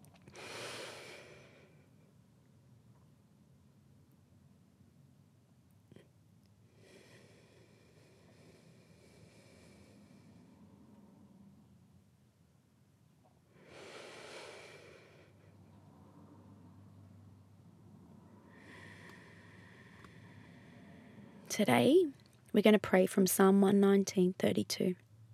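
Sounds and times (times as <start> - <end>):
slow deliberate breathing in and out: 0.0 - 2.2, 6.6 - 12.0, 13.3 - 21.5
speech: 21.6 - 25.0.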